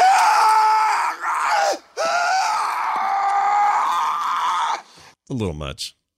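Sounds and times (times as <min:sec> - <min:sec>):
man screaming in movie audio clip: 0:00.0 - 0:04.9
speech: 0:05.3 - 0:06.0.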